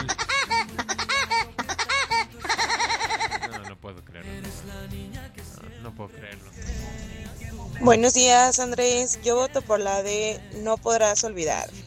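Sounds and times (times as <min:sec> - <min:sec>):
cartoon woodpecker laugh sound effect: 0:00.0 - 0:03.8
speech: 0:05.9 - 0:06.6, 0:07.8 - 0:11.8.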